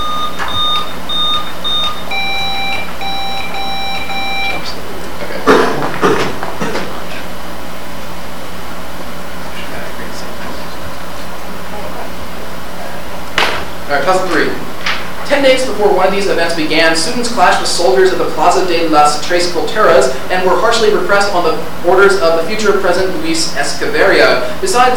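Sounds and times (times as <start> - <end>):
quiz buzzer being tested with short electronic beeps: 0.0 - 4.8
steady low hum: 0.0 - 24.9
speech: 15.4 - 24.9.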